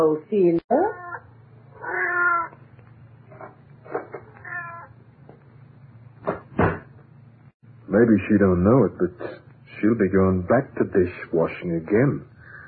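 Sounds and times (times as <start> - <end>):
speech: 0.0 - 0.7, 8.0 - 12.3
low steady hum: 0.0 - 12.6
cat meowing: 0.9 - 2.6, 4.0 - 5.0.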